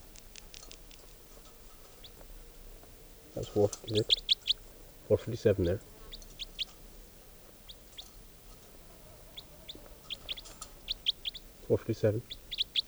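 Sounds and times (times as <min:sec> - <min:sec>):
louder lower bird clucking: 0:00.0 - 0:12.8
steady hum: 0:00.0 - 0:12.8
speech: 0:03.4 - 0:04.3, 0:05.1 - 0:05.9, 0:11.7 - 0:12.4
quick high bird chirps: 0:03.4 - 0:12.8.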